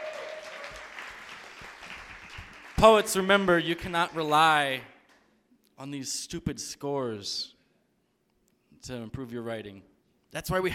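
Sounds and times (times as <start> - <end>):
audience applause for poets at a poetry slam: 0.0 - 4.6
speech: 2.8 - 4.9, 5.8 - 7.6, 8.8 - 10.7.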